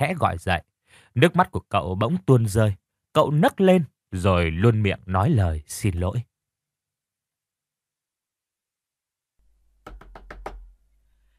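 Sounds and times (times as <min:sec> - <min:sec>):
speech: 0:00.0 - 0:06.3
knocking on a door from the outside: 0:09.8 - 0:10.7.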